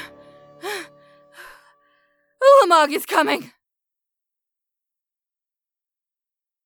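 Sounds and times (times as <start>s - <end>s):
woman panting from exertion on a lighthouse stairway: 0.6s - 1.6s
speech: 2.7s - 3.6s.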